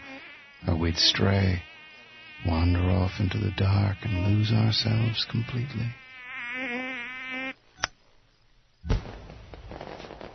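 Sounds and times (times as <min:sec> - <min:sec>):
speech: 0:00.8 - 0:01.7, 0:02.4 - 0:06.0
buzzing whistling whine of a firework: 0:08.8 - 0:10.3.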